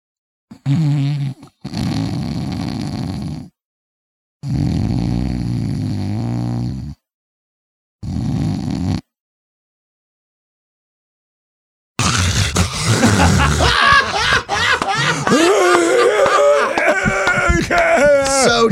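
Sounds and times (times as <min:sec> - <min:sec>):
person imitating sleep apnea snoring and breathing: 0:00.5 - 0:03.6, 0:04.4 - 0:07.1, 0:08.0 - 0:09.1, 0:12.0 - 0:14.0
laughter: 0:12.7 - 0:18.6.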